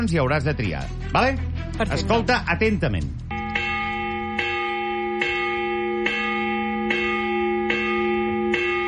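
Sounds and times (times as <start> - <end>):
speech: 0.0 - 3.2
high-pitched church bell tolling: 3.3 - 8.8.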